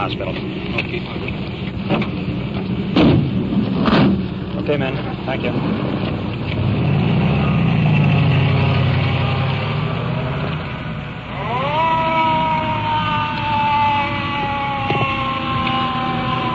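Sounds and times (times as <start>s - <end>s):
speech: 0.0s - 2.2s, 4.6s - 6.1s
resuscitator truck engine grinding and rumbling: 0.0s - 16.5s
rising whine like a siren or gear strain: 5.6s - 16.5s.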